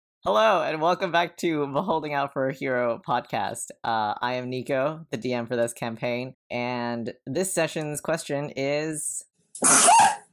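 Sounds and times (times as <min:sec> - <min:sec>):
speech: 0:00.2 - 0:10.2
sneeze: 0:09.6 - 0:10.3.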